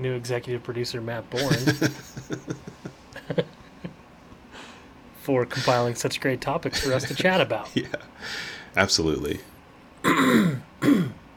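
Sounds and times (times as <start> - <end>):
speech: 0.0 - 2.7, 5.3 - 9.5, 10.2 - 10.6
laughter: 1.4 - 4.0, 5.5 - 5.9, 6.7 - 8.1
throat clearing: 10.0 - 11.3.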